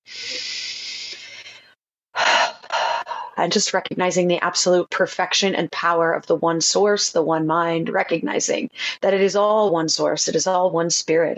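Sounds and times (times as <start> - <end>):
breathy bursts: 0.0 - 3.4
speech: 3.4 - 11.3.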